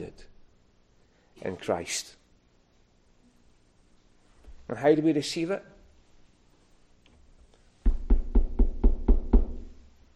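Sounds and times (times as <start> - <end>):
speech: 0.0 - 0.3, 1.4 - 2.2, 4.7 - 5.7
knocking on a door: 7.8 - 9.7.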